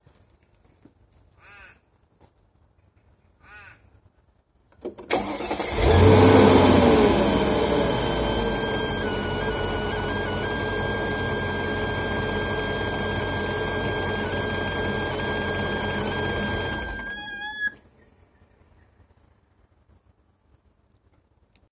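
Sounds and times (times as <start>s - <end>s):
Mercedes M113 engine whining high pitch squealing: 5.1s - 17.8s.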